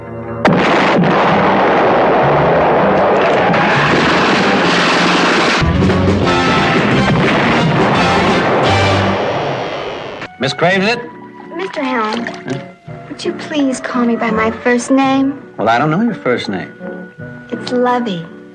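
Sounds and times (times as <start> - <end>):
nuclear explosion blast roar: 0.4 - 10.3
speech: 10.5 - 16.8, 17.6 - 18.3.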